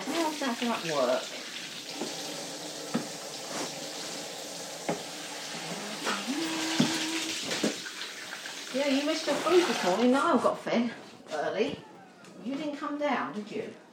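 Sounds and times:
tap water running as hands are washed: 0.0 - 10.5
speech: 0.4 - 2.2, 8.8 - 11.0, 11.6 - 13.8.

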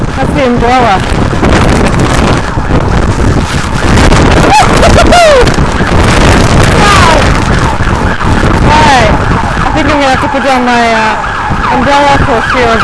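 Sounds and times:
strong gusty wind buffeting the microphone: 0.0 - 12.8
speech: 0.3 - 2.1, 10.3 - 12.8
person exclaiming: 4.4 - 5.6, 6.8 - 7.4.

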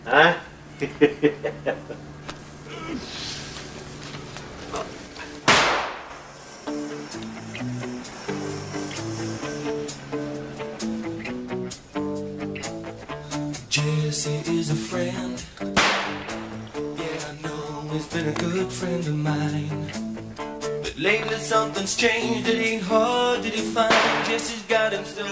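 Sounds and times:
speech: 0.0 - 2.2, 2.8 - 3.4, 18.2 - 20.1, 21.0 - 25.3
laughter: 0.8 - 3.1
firecrackers popping: 5.3 - 9.6, 15.7 - 16.6, 23.6 - 24.6
single louder bang: 5.4 - 6.4, 15.8 - 16.5, 23.9 - 24.5
steady music playing: 6.6 - 25.3.

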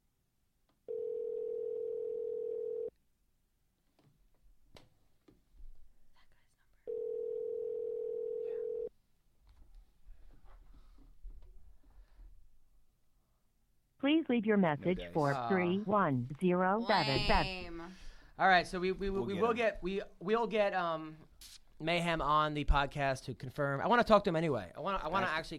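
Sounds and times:
outgoing phone call ringback tone: 0.9 - 2.9, 6.9 - 8.9
speech: 14.0 - 25.5.

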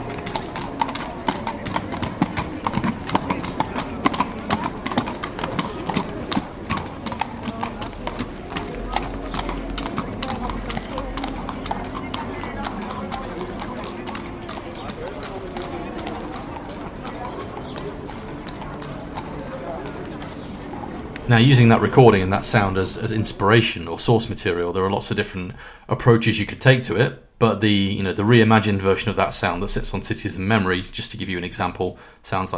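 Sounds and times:
horses clip-clopping through Seville streets: 0.0 - 24.4
low street background in Seville: 0.0 - 32.5
speech: 21.3 - 32.5.

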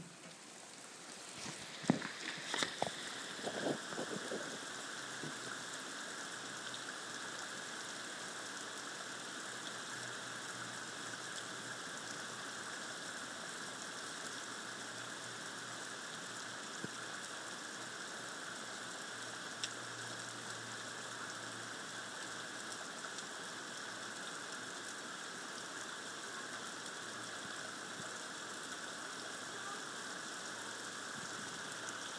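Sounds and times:
heavy rain: 0.0 - 32.1.

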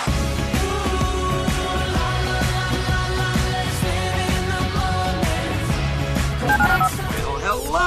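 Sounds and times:
music: 0.0 - 7.8
telephone keypad dialing tones: 6.5 - 6.9.

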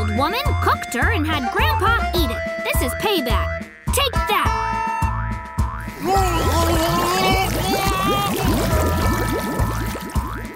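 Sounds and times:
thumping rhythmic backing: 0.0 - 10.5
speech: 0.2 - 4.8, 6.0 - 8.2
water glugging and bubbling as a mud boat sinks: 5.9 - 10.5.

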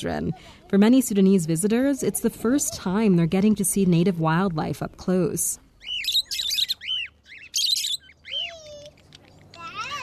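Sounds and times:
speech: 0.0 - 5.6
cockatiels, parakeets and other colorful birds chirping at a wildlife center in Sudan: 0.0 - 10.0.

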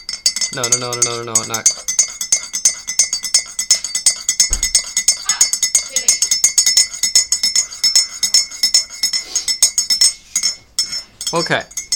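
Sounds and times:
teaspoon stirring coffee in a cup: 0.0 - 11.9
speech: 0.5 - 1.9, 11.3 - 11.8.

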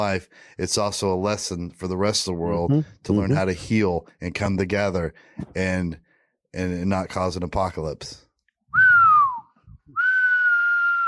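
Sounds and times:
speech: 0.0 - 8.2
person whistling: 8.7 - 11.0.

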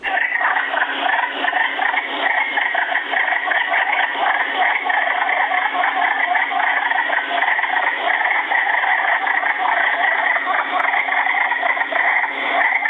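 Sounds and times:
wood frogs chorusing in spring breeding frenzy in woods surrounding a farm: 0.0 - 12.8.

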